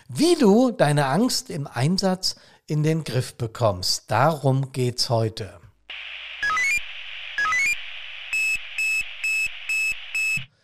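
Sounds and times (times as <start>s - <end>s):
speech: 0.1s - 5.6s
analog pager alarm piercing electronic beeps: 5.9s - 10.5s
analog pager alarm rising tone sequences: 5.9s - 10.5s.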